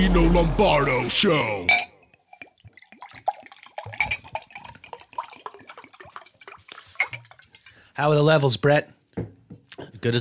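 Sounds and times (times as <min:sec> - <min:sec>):
speech: 0:00.0 - 0:01.9, 0:08.0 - 0:09.3
water dripping and splashing: 0:02.1 - 0:08.0.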